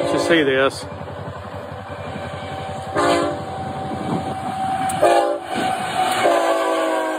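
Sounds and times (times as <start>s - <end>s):
freight train horn blasts: 0.0s - 0.5s, 2.3s - 3.6s, 4.8s - 7.1s
freight train cars rumbling and rattling: 0.0s - 7.1s
speech: 0.2s - 1.0s.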